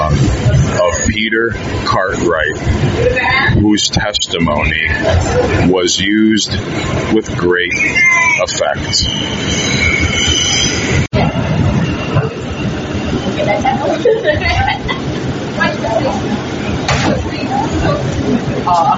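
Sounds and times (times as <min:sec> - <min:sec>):
faint indistinct voices murmuring: 0:00.0 - 0:10.4, 0:11.0 - 0:18.9
subway train rumbling on rails: 0:00.0 - 0:18.9
speech: 0:01.2 - 0:11.6, 0:13.4 - 0:15.0, 0:15.6 - 0:18.9
high metallic subway train wheel squeals: 0:07.6 - 0:11.2
laughter: 0:13.3 - 0:16.5, 0:17.1 - 0:18.9.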